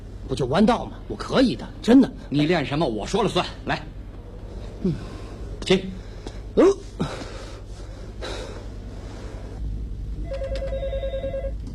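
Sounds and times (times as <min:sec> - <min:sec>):
speech: 0:00.3 - 0:04.0, 0:04.8 - 0:06.0, 0:06.6 - 0:07.2
breathy sounds: 0:04.5 - 0:09.6
telephone ringing with a bright trilling electronic tone: 0:10.2 - 0:11.6.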